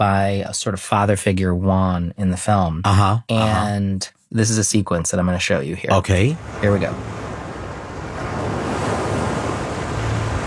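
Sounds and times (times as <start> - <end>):
speech: 0.0 - 7.2
ocean surf roaring with wind-like rush: 6.0 - 10.4.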